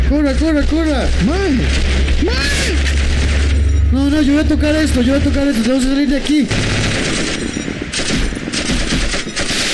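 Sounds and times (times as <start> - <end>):
speech: 0.1 - 3.0, 3.9 - 6.8
rapid automatic gunfire in a video game: 6.5 - 9.7.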